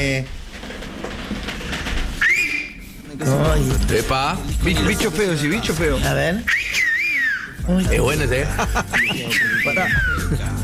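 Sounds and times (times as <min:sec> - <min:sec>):
speech: 0:00.0 - 0:00.4, 0:03.2 - 0:06.9, 0:07.7 - 0:10.6
loud piercing human whistle swooping upward: 0:02.2 - 0:02.9, 0:06.5 - 0:07.7, 0:09.0 - 0:10.4
laughter: 0:02.9 - 0:10.6.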